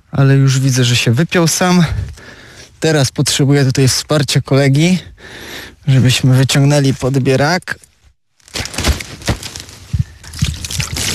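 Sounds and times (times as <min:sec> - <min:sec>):
speech: 0:00.1 - 0:07.9
water poured and splashed over a carp: 0:10.2 - 0:11.1.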